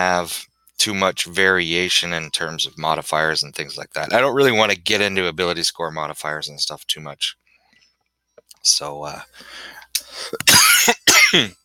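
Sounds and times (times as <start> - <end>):
speech: 0.0 - 7.4, 8.6 - 11.6
harsh coughs from a scratchy throat: 10.1 - 11.6.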